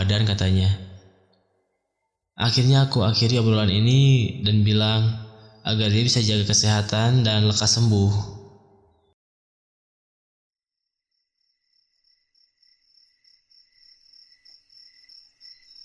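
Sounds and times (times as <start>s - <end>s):
speech: 0.1s - 0.9s, 2.4s - 8.4s
insects chirping at night in a dense high-pitched trill: 4.9s - 6.8s, 11.1s - 15.8s.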